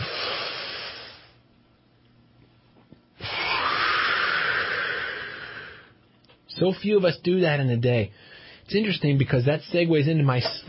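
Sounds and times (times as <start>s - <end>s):
deep breath in and out: 0.0s - 1.4s, 3.2s - 6.0s, 8.2s - 8.7s
speech: 6.6s - 10.6s.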